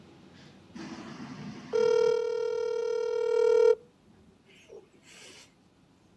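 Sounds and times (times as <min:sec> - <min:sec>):
long steady buzzing phone ringback tone: 0:01.7 - 0:03.8
quiet phone line hiss: 0:01.7 - 0:03.8.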